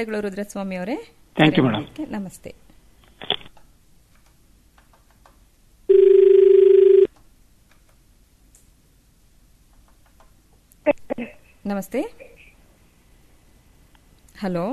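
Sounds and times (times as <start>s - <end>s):
speech: 0.0s - 3.3s, 11.7s - 12.3s, 14.4s - 14.7s
telephone ringing for an incoming listener call: 5.9s - 7.1s.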